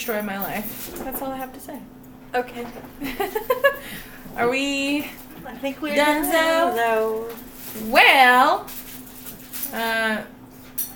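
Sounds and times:
speech: 0.0 - 8.8, 9.7 - 10.4
laughter: 3.0 - 4.0
dog whimpering: 5.9 - 7.3
person murmuring: 5.9 - 7.3.

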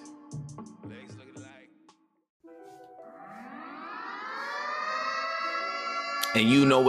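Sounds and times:
rising siren sound effect: 3.1 - 6.8
speech: 6.3 - 6.8.

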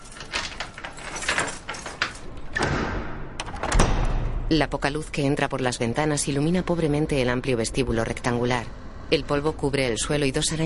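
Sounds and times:
key working the lock of an old house's front door: 0.0 - 2.7
old house's front door thud as it swings open: 1.3 - 4.5
speech: 4.5 - 10.6.

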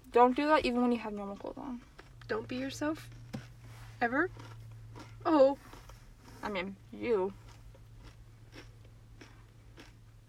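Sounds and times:
speech: 0.1 - 3.2, 4.0 - 4.5, 5.2 - 5.8, 6.4 - 7.4
crunchy chewing of food: 3.0 - 6.4, 7.3 - 10.2.

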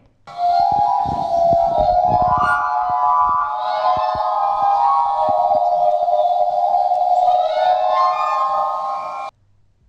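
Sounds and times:
liquid ringing limestone tones that waver and glide: 0.3 - 9.3.

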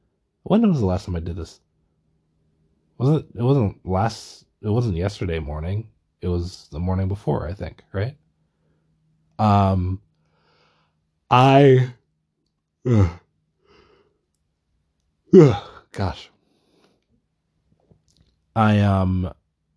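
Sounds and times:
speech: 0.4 - 1.7, 3.0 - 8.2, 9.4 - 10.0, 11.3 - 12.0, 12.8 - 13.2, 15.3 - 16.3, 18.6 - 19.4
person yawning: 12.9 - 13.2, 15.4 - 15.9.

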